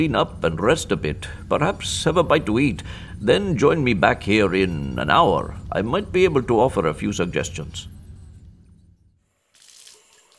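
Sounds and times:
speech: 0.0 - 8.0
faint low rumble: 0.0 - 9.2
water spraying from a faucet nozzle: 9.5 - 10.3.

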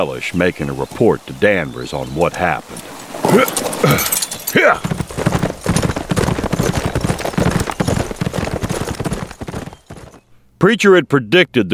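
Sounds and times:
speech: 0.0 - 5.4, 10.6 - 11.7
hooves of more than one horse clip-clopping: 2.5 - 10.2.

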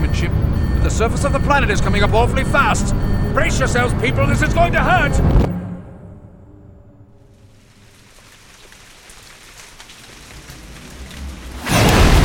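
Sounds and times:
low droning hum: 0.0 - 8.2
speech: 0.2 - 5.5
heavy pouring rain: 7.4 - 12.2
thunder: 9.9 - 12.2.

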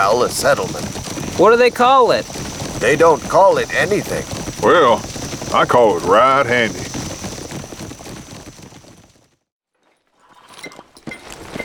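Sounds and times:
speech: 0.0 - 6.8
horse hooves clip-clopping: 0.0 - 9.4, 10.2 - 11.6.

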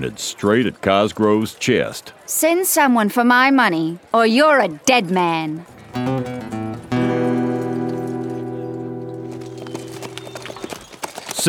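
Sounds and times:
speech: 0.0 - 6.6
loud sustained tone: 5.7 - 10.8
horses' hooves clip-clopping as riders leave on horseback: 9.2 - 11.4.

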